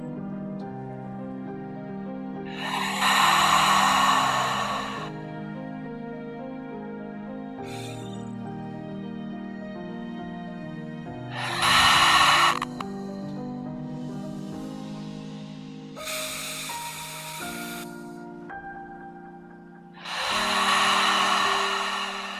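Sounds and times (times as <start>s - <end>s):
soft sustained musical drone: 0.0s - 22.3s
loud airy nasal inhales during a guided breathing exercise: 2.5s - 5.2s, 7.6s - 8.4s, 11.3s - 18.4s, 20.0s - 22.3s.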